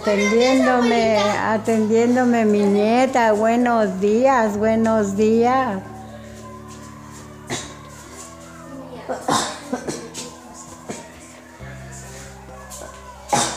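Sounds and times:
speech: 0:00.0 - 0:05.9
person coughing close to the microphone: 0:09.3 - 0:10.2.

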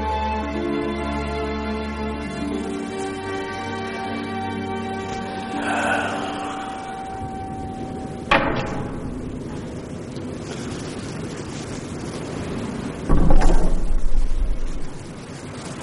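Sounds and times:
steady hiss: 0:00.0 - 0:15.8
rough noise with heavy low rumble: 0:01.4 - 0:15.8
door bursting open: 0:08.3 - 0:09.8, 0:13.1 - 0:15.2.

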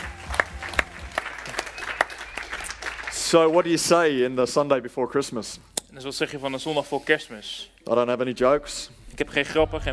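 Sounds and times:
small audience clapping for musicians: 0:00.0 - 0:04.2
speech: 0:03.3 - 0:09.9.

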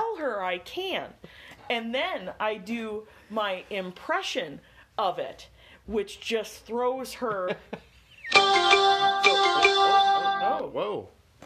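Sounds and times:
speech: 0:00.5 - 0:11.2
phone alert tone: 0:08.3 - 0:10.6.

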